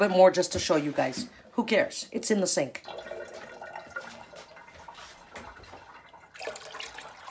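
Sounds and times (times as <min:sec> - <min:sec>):
speech: 0:00.0 - 0:03.2
water pouring from a can into a pot: 0:02.8 - 0:07.2.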